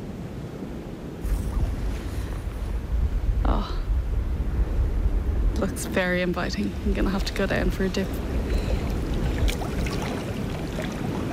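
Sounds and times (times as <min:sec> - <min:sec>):
faint surf: 0:00.0 - 0:11.3
soft steady wind on a beach by the sea: 0:00.0 - 0:11.3
speech: 0:05.7 - 0:08.4.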